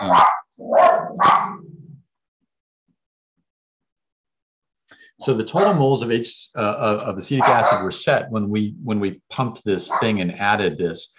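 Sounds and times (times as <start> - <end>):
speech: 0.0 - 1.5, 5.2 - 11.1
sharp dog barks: 0.0 - 1.6, 5.5 - 5.8, 7.4 - 7.9, 9.9 - 10.2.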